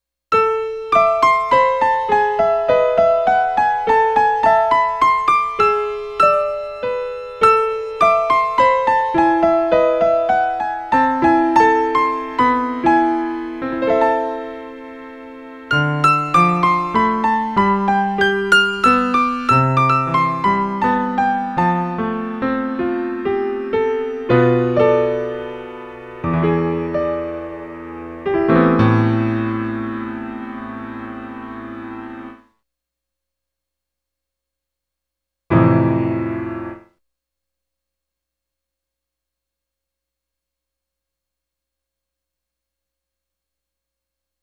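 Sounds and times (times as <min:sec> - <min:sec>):
high-pass filtered acoustic piano: 0:00.4 - 0:32.4, 0:35.5 - 0:36.9.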